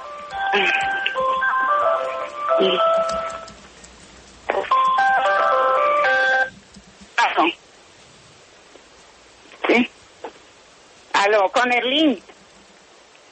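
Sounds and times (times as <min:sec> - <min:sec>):
melodic phone ringtone for an incoming call: 0:00.0 - 0:03.5, 0:04.5 - 0:06.5
faint noise: 0:00.0 - 0:13.3
speech: 0:00.5 - 0:01.0, 0:02.6 - 0:03.5, 0:11.3 - 0:12.3.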